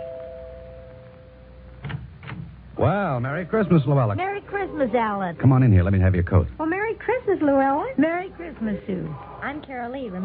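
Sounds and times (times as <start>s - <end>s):
doorbell ringing: 0.0s - 1.7s
speech: 2.8s - 10.2s.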